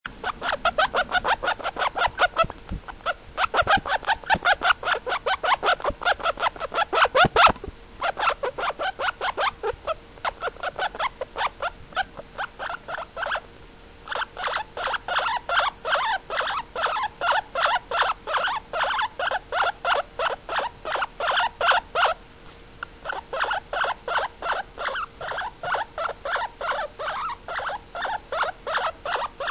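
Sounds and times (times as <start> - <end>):
guinea pig purring: 0.2 - 13.4, 14.0 - 22.2, 23.0 - 29.4.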